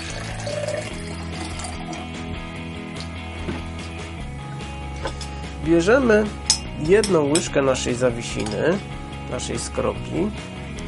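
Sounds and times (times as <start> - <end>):
water poured steadily into a glass: 0.0 - 2.2
speech: 5.7 - 10.5.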